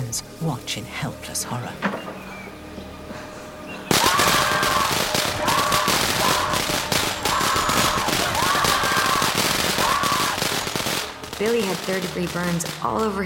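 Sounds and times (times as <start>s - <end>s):
speech: 0.1s - 2.2s, 11.4s - 13.2s
string of firecrackers exploding behind an outhouse door: 3.9s - 13.2s.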